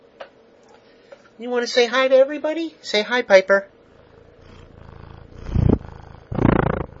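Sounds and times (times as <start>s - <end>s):
speech: 1.4s - 3.8s
cat purring: 3.9s - 6.9s.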